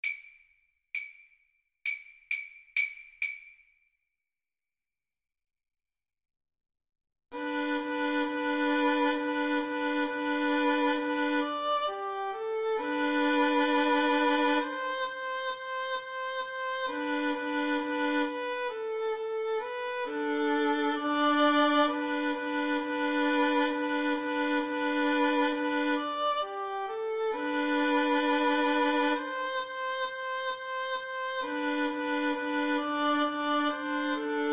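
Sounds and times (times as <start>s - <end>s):
cello playing boogie: 7.3s - 34.5s
violin playing boogie: 7.3s - 34.5s.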